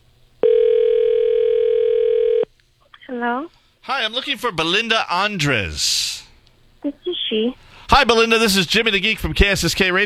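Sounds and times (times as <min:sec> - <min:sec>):
faint hiss: 0:00.0 - 0:10.0
phone ringback tone of an outgoing call: 0:00.4 - 0:02.5
speech: 0:03.4 - 0:06.2, 0:06.8 - 0:10.0.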